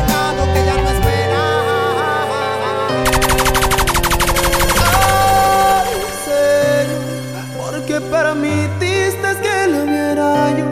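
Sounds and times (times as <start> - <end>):
tuneful music: 0.0 - 10.7
rapid burst of automatic gunfire: 3.1 - 6.2.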